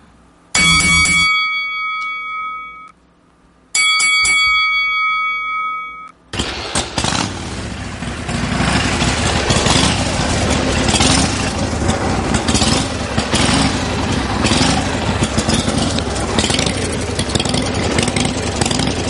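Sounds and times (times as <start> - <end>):
bell ringing in rapid strikes: 0.6 - 3.0, 3.7 - 6.2
rumbling engine-like roar: 6.3 - 19.0.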